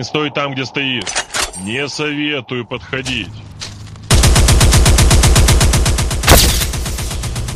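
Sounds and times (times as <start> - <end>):
speech: 0.0 - 3.5
rapid automatic gunfire: 4.1 - 7.5
sharp blast: 6.2 - 7.2.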